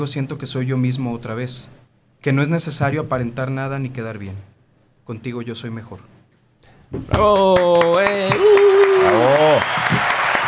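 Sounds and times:
speech: 0.0s - 4.5s, 5.1s - 6.2s, 6.9s - 10.2s
hand claps: 7.2s - 10.4s.

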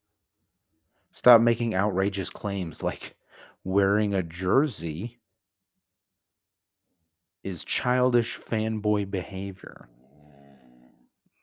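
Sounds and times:
speech: 1.1s - 5.2s, 7.4s - 10.0s
lying dog grunting and growling: 9.7s - 11.2s.

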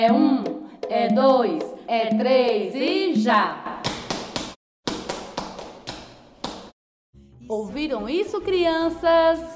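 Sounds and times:
speech: 0.0s - 3.7s, 7.5s - 9.5s
several feet stomping on a floor: 3.8s - 6.8s.

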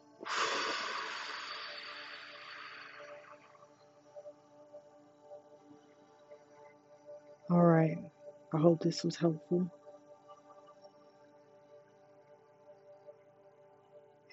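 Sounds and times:
slow exhale during a grounding breathing exercise: 0.2s - 3.6s
speech: 7.5s - 9.8s.

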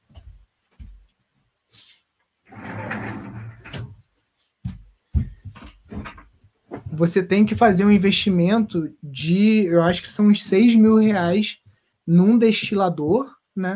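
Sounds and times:
door being pushed shut: 2.5s - 4.0s
speech: 7.0s - 13.7s.

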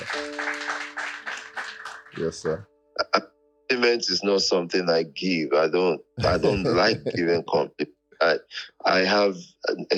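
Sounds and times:
several people clapping for guests: 0.0s - 2.6s
speech: 2.2s - 9.9s
laughter: 6.2s - 7.8s.

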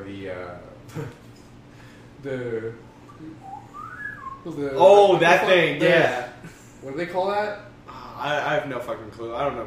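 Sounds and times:
speech: 0.0s - 1.2s, 2.2s - 3.8s, 4.4s - 9.6s
person whistling a rising sliding glide in imitation of a slide whistle: 2.9s - 4.4s.

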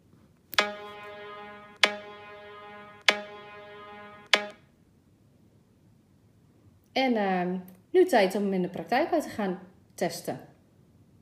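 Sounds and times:
phone app ticking red-light signal: 0.6s - 4.6s
speech: 7.0s - 10.5s.

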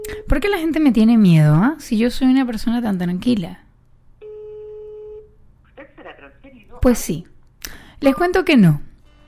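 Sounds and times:
speech: 0.1s - 3.6s, 6.8s - 8.9s
electronic telephone ringback tone on an outgoing call: 4.2s - 5.3s.

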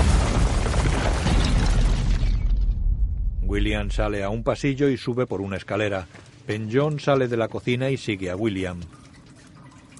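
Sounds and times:
door exploding: 0.0s - 3.8s
speech: 3.6s - 9.0s.

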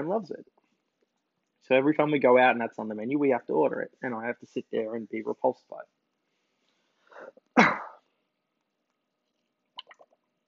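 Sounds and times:
speech: 0.0s - 0.6s, 1.6s - 6.0s
person coughing: 7.2s - 8.0s.

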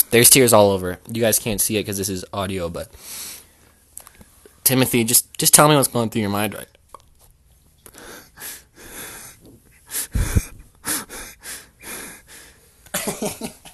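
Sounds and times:
speech: 0.1s - 3.3s, 4.7s - 6.8s
person on a call breathing heavily and wheezily: 7.9s - 12.8s.

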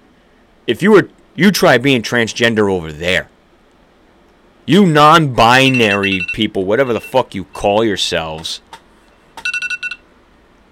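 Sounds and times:
speech: 0.7s - 3.3s, 4.7s - 8.6s
alarm clock ringing with rapid high-pitched electronic beeps: 5.6s - 6.4s.

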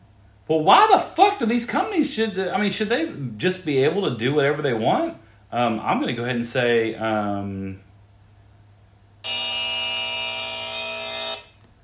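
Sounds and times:
speech: 0.5s - 7.8s
buzzer sound effect: 9.2s - 11.6s.

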